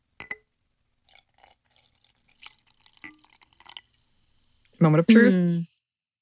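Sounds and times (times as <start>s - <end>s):
glass clink: 0.2s - 0.5s, 3.0s - 3.7s
carbonated water pouring into a glass: 1.0s - 4.7s
speech: 4.8s - 5.7s.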